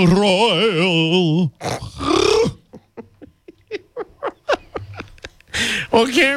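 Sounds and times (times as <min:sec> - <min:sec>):
speech: 0:00.0 - 0:02.6, 0:05.6 - 0:06.3
man's vocal impression of a cowardly lion: 0:00.0 - 0:02.7
laughter: 0:02.5 - 0:05.8.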